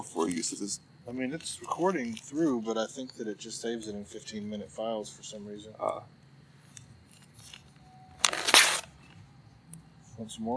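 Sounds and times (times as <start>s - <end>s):
speech: 0.2s - 6.2s, 10.2s - 10.5s
pages tearing from an old digest-style magazine: 7.2s - 9.0s.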